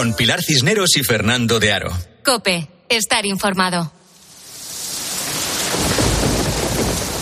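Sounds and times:
speech: 0.0s - 4.0s
heavy rain pouring down in a thunderstorm: 4.1s - 7.1s
deep rumble of thunder: 4.8s - 7.1s.

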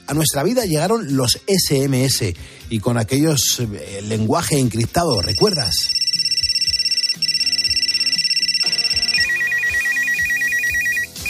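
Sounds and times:
speech: 0.1s - 6.0s
electronic mobile phone ringtone melody from 2000: 5.1s - 11.2s.

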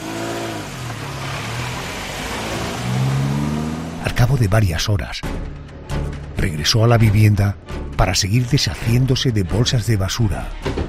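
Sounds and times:
car engine accelerating as car drives away in the middle of the night: 0.0s - 4.5s
speech: 4.2s - 5.5s, 6.4s - 10.8s.

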